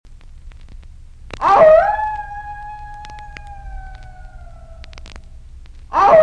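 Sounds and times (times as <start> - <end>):
wolf howling: 1.4 - 5.2, 5.9 - 6.2.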